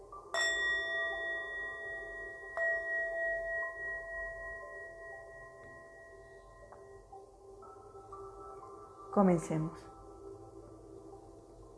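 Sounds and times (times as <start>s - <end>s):
meditation bell struck: 0.1s - 9.2s
speech: 9.2s - 9.9s.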